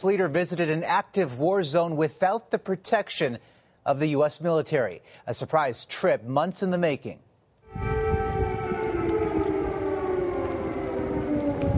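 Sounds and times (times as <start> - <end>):
speech: 0.0 - 7.9
air raid sirens wailing in Kyiv Ukraine: 7.7 - 11.7.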